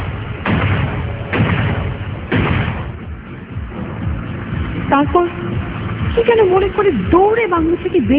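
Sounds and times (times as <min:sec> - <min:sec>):
revolver shots fired in an audio drama: 0:00.0 - 0:03.1
speech: 0:05.0 - 0:05.4, 0:06.2 - 0:08.1.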